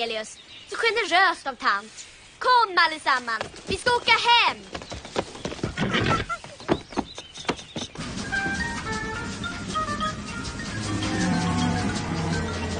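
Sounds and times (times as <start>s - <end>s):
speech: 0.0s - 4.9s
horse hooves clip-clopping: 3.2s - 12.7s.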